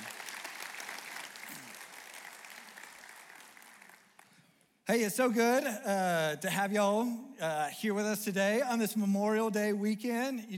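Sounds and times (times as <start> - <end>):
church audience applauding for a scripture reader: 0.0 - 4.5
speech: 4.9 - 10.5.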